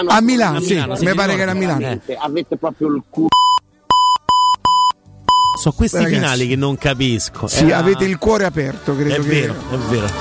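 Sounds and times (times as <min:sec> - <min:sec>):
speech: 0:00.0 - 0:03.5, 0:05.6 - 0:10.1
loud high-pitched electronic beeps: 0:03.3 - 0:05.6.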